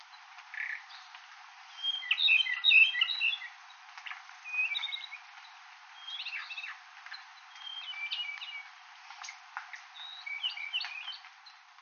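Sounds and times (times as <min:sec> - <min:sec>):
Ryukyu robin song in Amami: 0:01.7 - 0:11.7.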